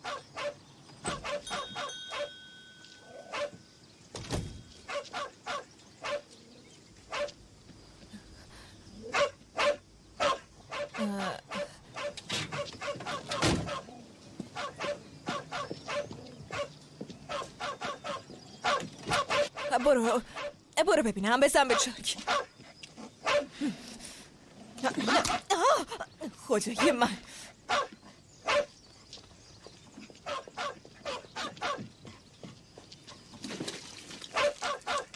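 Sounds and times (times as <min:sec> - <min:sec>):
dog barking inside a car at a gas station: 0:00.0 - 0:02.3, 0:03.2 - 0:03.6, 0:04.9 - 0:06.3, 0:07.1 - 0:07.4, 0:09.1 - 0:13.9, 0:14.6 - 0:16.7, 0:17.3 - 0:20.6, 0:21.7 - 0:22.5, 0:23.2 - 0:23.5, 0:27.7 - 0:28.7, 0:30.2 - 0:31.9, 0:34.4 - 0:35.1
person's voice: 0:11.0 - 0:11.7, 0:19.7 - 0:22.2, 0:24.8 - 0:27.3
speech: 0:19.9 - 0:22.4, 0:26.5 - 0:27.3.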